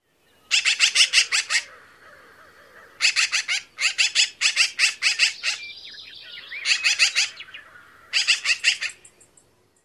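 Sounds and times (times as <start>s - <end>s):
Black-billed Magpie shek-shek-shek calls: 0.5s - 1.7s, 3.0s - 5.7s, 6.3s - 7.5s, 8.1s - 9.1s.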